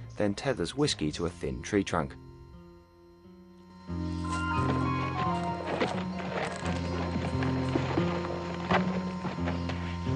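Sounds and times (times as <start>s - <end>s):
speech: 0.2s - 2.3s
horse hooves clopping at a walking pace: 4.3s - 10.0s.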